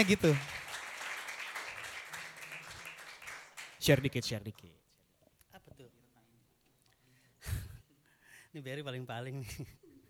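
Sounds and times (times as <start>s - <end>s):
speech: 0.0s - 0.5s, 3.8s - 4.8s, 8.5s - 9.8s
faint audience applause at a jazz event: 0.0s - 4.2s.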